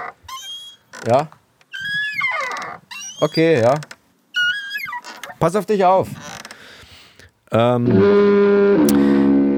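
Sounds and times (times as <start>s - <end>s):
swinging trapeze creaking: 0.0s - 6.7s
speech: 1.0s - 1.4s, 3.2s - 3.9s, 5.4s - 6.3s, 7.5s - 9.1s.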